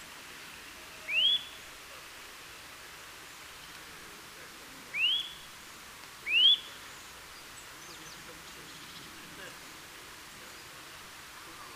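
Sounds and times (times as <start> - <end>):
Eurasian nuthatch Sitta europaea calling with bright rising whistles: 1.1 - 1.6, 4.9 - 5.4, 6.3 - 6.8.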